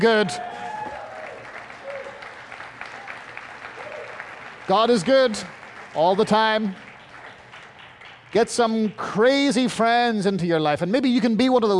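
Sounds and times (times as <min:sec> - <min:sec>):
speech: 0:00.0 - 0:00.6, 0:04.7 - 0:06.8, 0:08.3 - 0:11.7
crowd cheering and clapping: 0:00.0 - 0:09.0
shouts and whoops from crowd: 0:00.1 - 0:02.2, 0:03.7 - 0:04.2.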